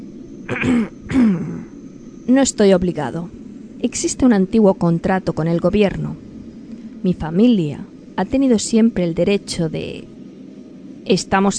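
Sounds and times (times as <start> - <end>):
speech: 0.5 - 1.0, 2.3 - 6.2, 7.0 - 10.2, 11.0 - 11.5
man with a deep voice clearing his throat: 0.5 - 1.6.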